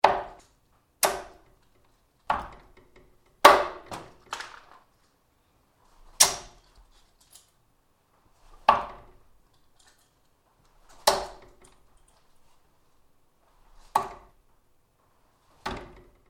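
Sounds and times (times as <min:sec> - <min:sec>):
various darts hitting a dartboard: 0:00.0 - 0:01.5, 0:02.3 - 0:02.8, 0:03.4 - 0:04.3, 0:06.2 - 0:06.6, 0:08.6 - 0:09.2, 0:10.9 - 0:11.6, 0:13.8 - 0:14.4, 0:15.6 - 0:16.1.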